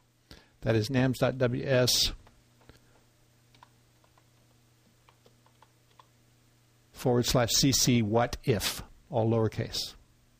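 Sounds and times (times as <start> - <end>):
low steady hum: 0.0 - 10.3
speech: 0.6 - 2.2, 7.0 - 10.0
faint typing on a computer keyboard: 3.5 - 4.3, 5.0 - 6.1.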